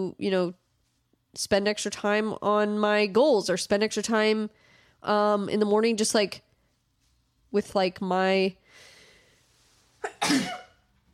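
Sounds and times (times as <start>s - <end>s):
speech: 0.0s - 0.6s, 1.3s - 6.5s, 7.5s - 8.9s, 10.1s - 10.6s
person sneezing: 10.0s - 10.8s.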